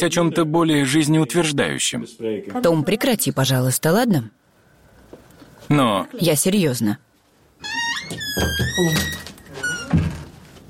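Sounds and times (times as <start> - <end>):
speech: 0.0 - 4.4, 5.7 - 9.2
office door hinges creaking: 7.6 - 10.6
office door shutting with a solid thunk: 8.0 - 10.3.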